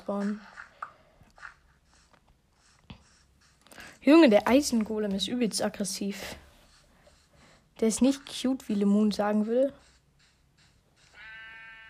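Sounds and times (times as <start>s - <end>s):
speech: 0.0s - 0.6s, 4.0s - 6.4s, 7.8s - 9.9s
video game sheep bleating sound effect: 11.1s - 11.8s.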